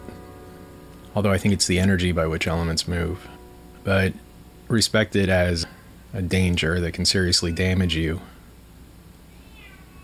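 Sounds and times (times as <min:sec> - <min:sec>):
steady low hum: 0:00.0 - 0:10.0
speech: 0:01.2 - 0:08.4
drawn-out cat meow: 0:09.3 - 0:10.0.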